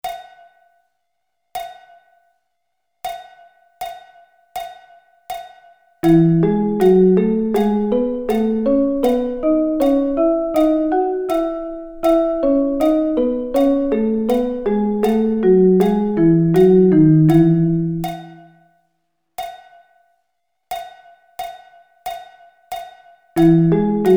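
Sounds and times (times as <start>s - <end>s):
notes played in thirds in E: 6.0s - 18.5s, 23.4s - 24.1s.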